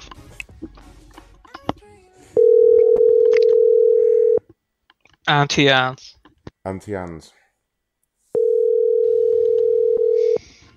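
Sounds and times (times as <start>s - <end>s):
telephone tone as a call is placed: 2.4s - 4.4s, 8.4s - 10.4s
speech: 5.3s - 7.4s.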